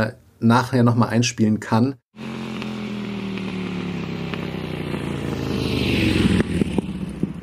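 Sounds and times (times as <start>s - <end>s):
speech: 0.0s - 2.3s
small two-stroke scooter engine revving: 2.2s - 7.4s.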